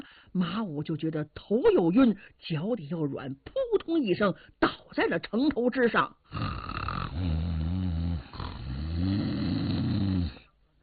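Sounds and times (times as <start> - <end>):
speech: 0.4 - 6.5
storyteller imitating loud snoring: 6.3 - 10.5.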